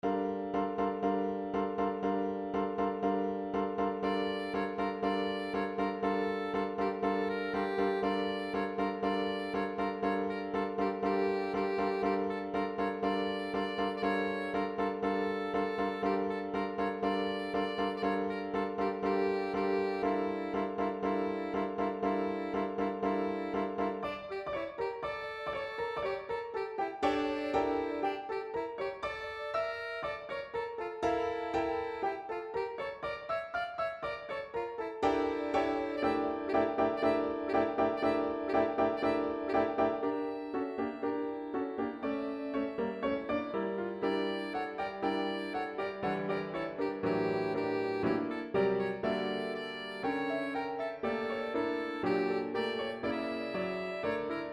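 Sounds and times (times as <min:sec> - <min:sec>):
Arabian folk melody MIDI music: 0:00.0 - 0:54.5.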